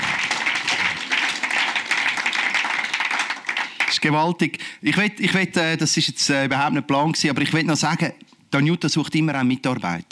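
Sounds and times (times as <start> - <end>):
audience applause: 0.0 - 4.1
speech: 4.0 - 10.1.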